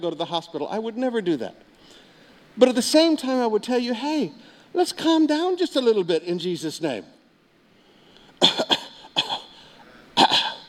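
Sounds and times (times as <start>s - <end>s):
speech: 0.0s - 2.0s, 2.6s - 7.2s, 8.4s - 8.8s
person coughing: 8.4s - 10.6s.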